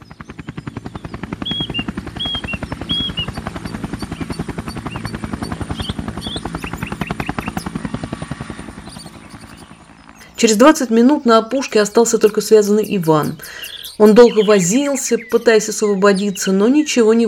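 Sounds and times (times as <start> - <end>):
faint bird chirps: 0.0 - 7.7, 8.8 - 10.5, 11.1 - 16.7
helicopter rotor chopping over low engine rumble: 0.0 - 17.2
speech: 10.4 - 17.2.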